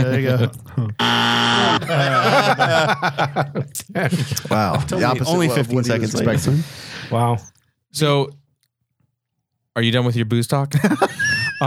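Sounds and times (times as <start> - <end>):
laughter: 0.0 - 6.8, 10.8 - 11.6
speech: 0.0 - 8.4, 9.8 - 11.6
flat electronic game-show buzzer: 1.0 - 2.4.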